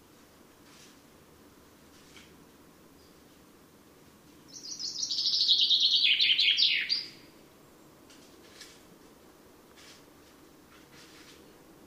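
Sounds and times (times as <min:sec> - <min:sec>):
Common chaffinch song: 0:04.5 - 0:07.3.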